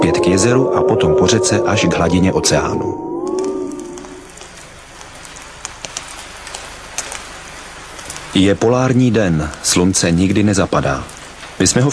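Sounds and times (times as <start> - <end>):
speech: 0.0 - 3.0, 8.4 - 11.9
steady rain falling on Arctic tundra: 0.0 - 11.9
sharper raindrop taps on Arctic tundra: 3.2 - 11.9.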